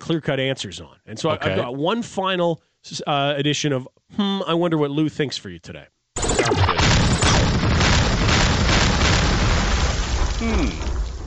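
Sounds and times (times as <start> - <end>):
speech: 0.1 - 6.6, 10.4 - 10.9
explosion sound effects in a segment jingle: 6.2 - 11.2.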